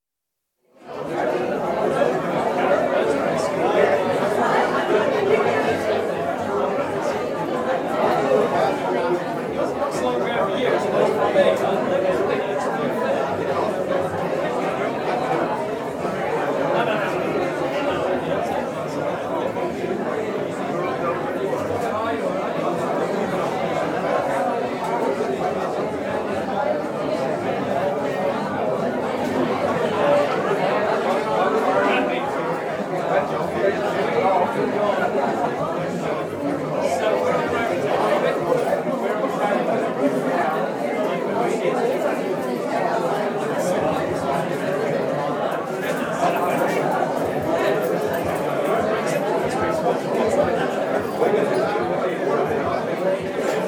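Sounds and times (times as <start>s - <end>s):
large crowd of over 100 at a dinner-dance in a hall: 0.7s - 53.6s.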